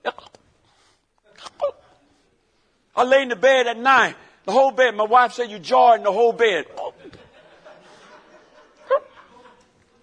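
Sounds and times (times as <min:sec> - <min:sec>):
voice imitating hiccups: 0:00.0 - 0:00.4, 0:01.3 - 0:02.0
speech: 0:03.0 - 0:06.8
laughter: 0:06.7 - 0:10.0.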